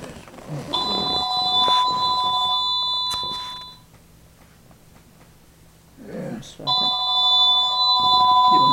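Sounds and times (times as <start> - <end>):
telephone ringing with electronic bursts: 0.8 - 3.8, 6.7 - 8.7.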